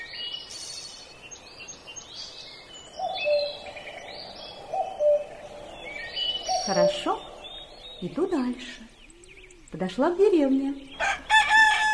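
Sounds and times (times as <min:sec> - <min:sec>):
birds singing and chirping in a sunny forest: 0:00.0 - 0:11.9
hooting or cooing bird notes: 0:03.0 - 0:07.8
speech: 0:06.7 - 0:07.3, 0:08.0 - 0:08.9, 0:09.7 - 0:11.2.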